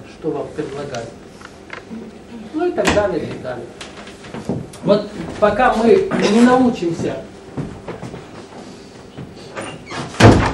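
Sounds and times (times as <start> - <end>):
speech: 0.2 - 1.3, 1.9 - 7.3
door slamming shut: 9.9 - 10.5.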